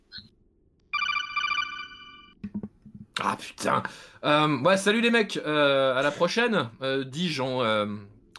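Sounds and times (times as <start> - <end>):
telephone ringing with electronic trill: 0.9 - 2.4
low clattering thumps: 2.4 - 3.2
speech: 3.2 - 8.1.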